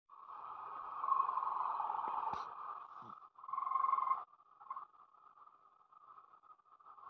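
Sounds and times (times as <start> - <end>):
raccoon: 0.6 - 5.0.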